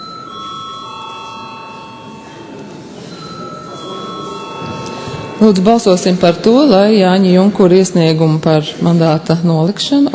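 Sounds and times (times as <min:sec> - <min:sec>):
bell ringing to call members of parliament to a vote: 0:00.0 - 0:07.7
speech: 0:05.4 - 0:10.1.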